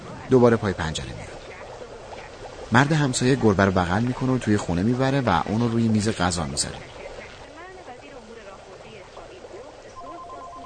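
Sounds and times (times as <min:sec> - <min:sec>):
speech: 0:00.3 - 0:01.4, 0:02.7 - 0:07.0
home telephone ringing: 0:10.0 - 0:10.6.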